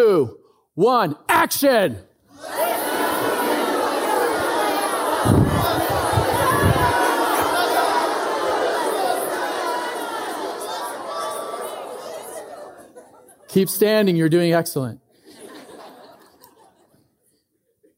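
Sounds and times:
speech: 0.0s - 2.6s, 13.5s - 15.0s
large crowd shouting a phrase in unison: 2.3s - 13.0s
laughter: 2.4s - 14.0s, 15.2s - 17.2s.

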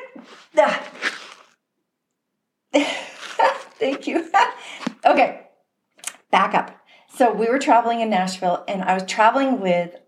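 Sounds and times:
person sneezing with gasping build-up: 0.2s - 1.5s, 2.8s - 3.9s
speech: 6.3s - 10.0s.

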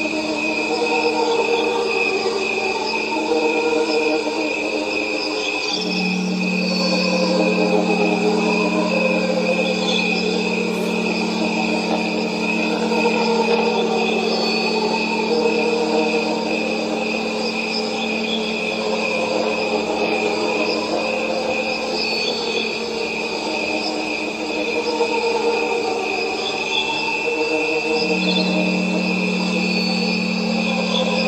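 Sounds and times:
crickets chirring: 0.0s - 31.2s
long pure tones at different pitches: 0.0s - 31.2s
low steady tone: 5.8s - 20.6s, 28.0s - 31.2s.

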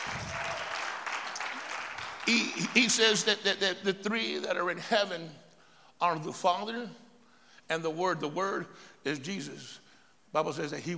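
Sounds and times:
crowd clapping: 0.0s - 3.2s
speech: 2.3s - 5.4s, 6.0s - 7.0s, 7.7s - 10.9s.

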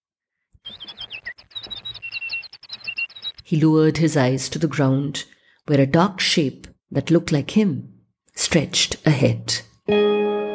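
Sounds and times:
several birds chirping and tweeting: 0.5s - 3.9s
speech: 3.5s - 10.1s.

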